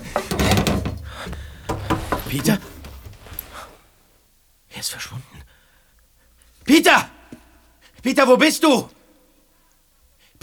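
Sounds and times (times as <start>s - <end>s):
wooden wardrobe door pulled open with clunk and rattling scrape: 0.0s - 4.0s
speech: 2.3s - 2.8s, 4.8s - 5.5s, 8.0s - 9.0s.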